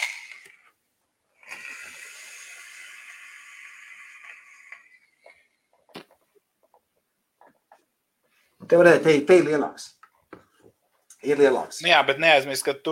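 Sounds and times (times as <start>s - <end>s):
strong inhale and exhale of e-cigarette vapor: 1.4s - 6.1s
speech: 8.7s - 10.0s, 11.2s - 12.9s.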